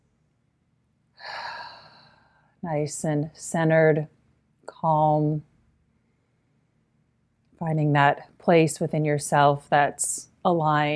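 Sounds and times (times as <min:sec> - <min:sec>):
deep inhaled breath taken as a group breathing exercise: 0:01.2 - 0:02.6
speech: 0:02.6 - 0:04.2, 0:04.8 - 0:05.5, 0:07.6 - 0:10.9.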